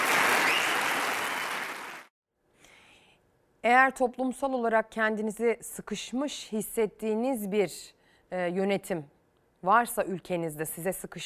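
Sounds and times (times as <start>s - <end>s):
crowd applause at a lawyers' protest: 0.0s - 2.1s
speech: 3.6s - 11.2s.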